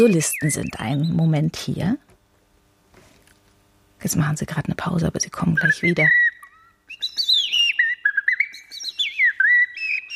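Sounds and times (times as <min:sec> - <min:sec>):
two bird-voice imitators whistling an imitation of birdsong: 0:00.0 - 0:01.3, 0:05.6 - 0:10.1
speech: 0:00.0 - 0:02.1, 0:04.0 - 0:06.2.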